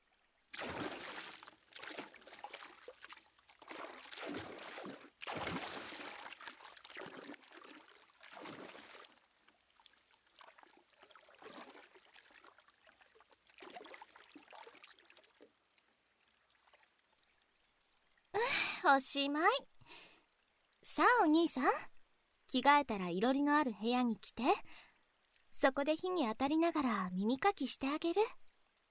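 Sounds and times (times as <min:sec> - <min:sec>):
hot water poured over someone: 0:00.4 - 0:17.2
speech: 0:18.8 - 0:19.7, 0:21.0 - 0:21.9, 0:22.5 - 0:24.9, 0:25.6 - 0:28.4.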